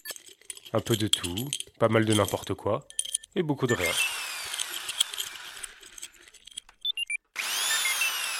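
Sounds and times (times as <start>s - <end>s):
metal clinking and clattering: 0.0s - 3.4s, 4.2s - 6.8s
speech: 0.7s - 4.1s
drill running: 3.8s - 6.4s, 7.3s - 8.3s
power tool whining in a garage: 3.8s - 6.6s, 7.3s - 8.3s.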